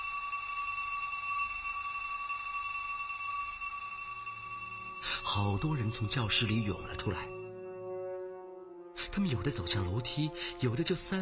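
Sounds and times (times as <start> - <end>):
electric school bell ringing for end of class: 0.0 - 8.6
speech: 5.2 - 7.4, 9.2 - 11.1.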